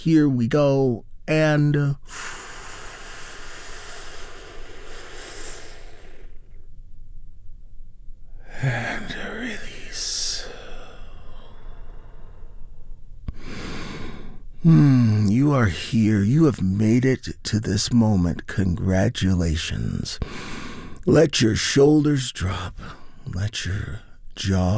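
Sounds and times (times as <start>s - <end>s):
speech: 0.0s - 2.4s, 8.6s - 9.2s, 14.6s - 24.7s
slow deep healing breaths during a guided relaxation: 2.0s - 6.8s, 10.2s - 15.3s, 20.2s - 21.1s, 22.7s - 23.3s.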